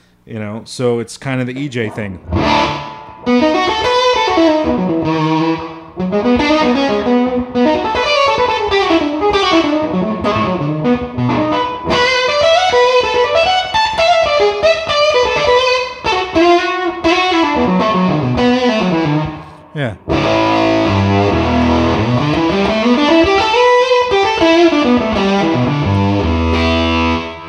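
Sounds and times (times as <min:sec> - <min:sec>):
speech: 0:00.2 - 0:03.5
electric guitar with fuzz pedal, plate reverb and delay playing melodic lines: 0:01.9 - 0:27.4.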